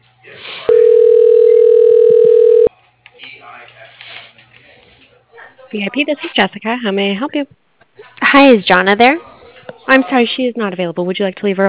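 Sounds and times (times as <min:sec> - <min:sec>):
phone-line voices: 0:00.7 - 0:02.7
telephone ringback tone while a call is transferred to an operator: 0:00.7 - 0:02.7
speech: 0:05.7 - 0:07.6, 0:08.3 - 0:09.3, 0:09.9 - 0:11.6.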